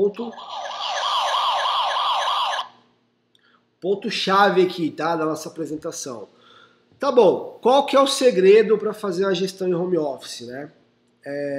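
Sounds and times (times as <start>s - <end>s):
speech: 0.0s - 0.7s, 3.8s - 6.4s, 7.0s - 11.5s
loud siren sound effect wailing: 0.0s - 2.7s.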